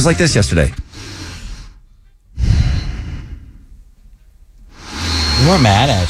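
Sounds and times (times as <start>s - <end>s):
speech: 0.0s - 1.1s, 5.5s - 6.0s
heavy breathy exhales blown into the microphone: 0.8s - 3.9s.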